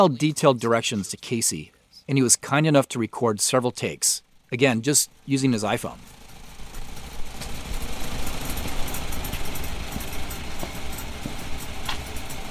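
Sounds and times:
speech: 0.0 - 6.2
old Farmall Model A tractor engine idling on a farm: 3.8 - 12.4
constant mechanical rattle of tractor engine: 4.2 - 12.4.

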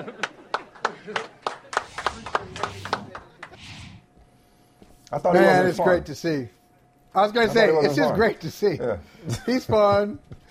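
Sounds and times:
hands clapping in a round of applause: 0.2 - 3.6
speech: 1.0 - 1.3, 5.1 - 10.4.

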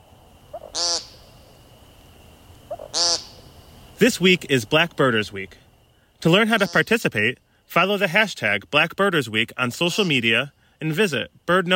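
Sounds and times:
faint steady hiss: 0.0 - 11.7
American woodcock giving buzzy nasal peent calls: 0.5 - 1.7, 2.6 - 3.8
speech: 4.0 - 5.6, 6.2 - 11.7.

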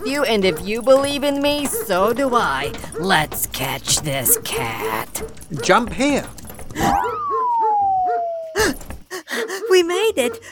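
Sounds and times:
speech: 0.0 - 7.1, 9.8 - 10.5
dog barking in a video game: 0.4 - 5.9
long smoothly falling whistle-like tone in a video game: 6.8 - 8.7.

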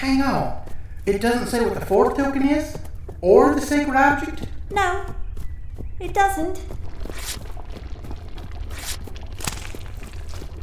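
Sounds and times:
speech: 0.0 - 5.2, 6.0 - 7.4
steady low rumble: 6.5 - 10.6
paper dipped into digestive juices squelching: 6.7 - 10.6.

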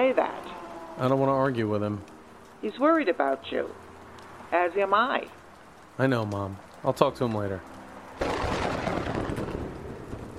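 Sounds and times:
speech: 0.0 - 0.4, 1.0 - 3.8, 4.5 - 5.4, 6.0 - 8.4
heavy rain: 0.0 - 10.3
deep rumbling thunder: 8.2 - 10.3.

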